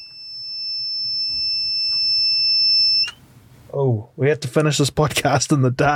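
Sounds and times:
small power inverter alarm tone: 0.0s - 3.2s
speech: 3.7s - 5.9s.

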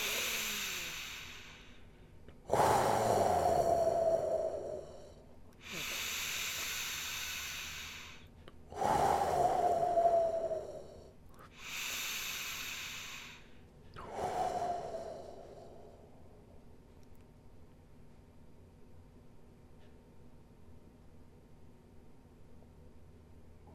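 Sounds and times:
deep breaths during a guided breathing exercise: 0.0s - 16.6s.

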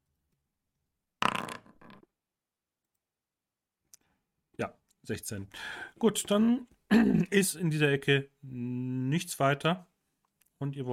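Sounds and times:
dice rattling and clattering across a surface: 1.2s - 2.1s
speech: 4.6s - 9.9s, 10.6s - 10.9s.

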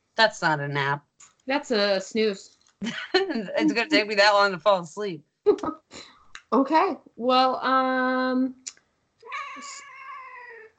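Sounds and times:
speech: 0.2s - 8.6s, 9.6s - 9.9s
cat meowing: 9.3s - 10.7s.

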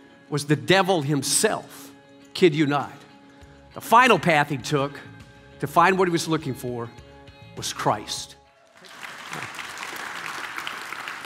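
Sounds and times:
speech: 0.3s - 3.1s, 3.8s - 7.0s, 7.6s - 8.4s
crowd applauding: 8.6s - 11.2s.

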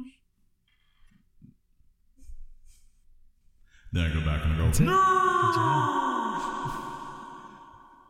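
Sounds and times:
echo tail after a spoken word: 3.8s - 8.0s
speech: 4.7s - 6.0s.

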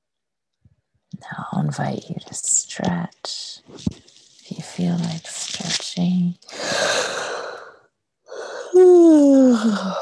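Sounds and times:
speech: 1.2s - 4.0s, 4.8s - 5.3s
person yawning: 8.4s - 10.0s.

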